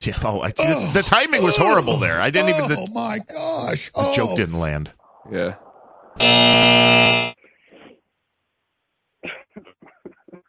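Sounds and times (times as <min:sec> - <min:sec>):
speech: 0:00.0 - 0:05.6, 0:06.2 - 0:07.3
short bursts like coughing or laughter: 0:00.6 - 0:04.4, 0:09.2 - 0:10.4
faint breathy sounds: 0:00.6 - 0:04.7
loud harsh game-show buzzer: 0:06.2 - 0:07.4.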